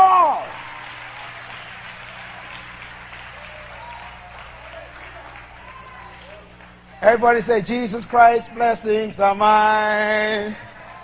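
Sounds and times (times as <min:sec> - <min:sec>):
audience clapping in praise of God: 0:00.0 - 0:07.5
low continuous hum: 0:00.0 - 0:11.0
speech: 0:07.0 - 0:10.7.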